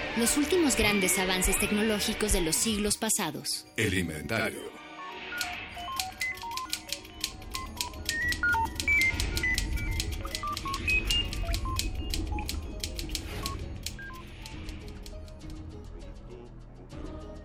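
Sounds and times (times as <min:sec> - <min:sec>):
speech: 0:00.2 - 0:04.8
cell phone keypad tones with key clicks: 0:05.3 - 0:14.8.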